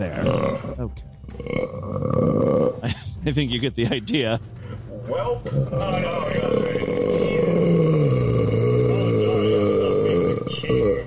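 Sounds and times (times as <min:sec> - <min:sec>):
loud deep gravelly burp: 0:00.0 - 0:03.0, 0:05.5 - 0:11.0
speech: 0:00.0 - 0:07.2.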